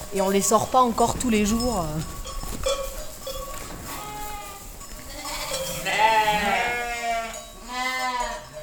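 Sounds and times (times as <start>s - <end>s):
speech: 0.1s - 2.8s
sheep and newborn lambs bleating in a barn while being fed hay: 3.5s - 8.6s.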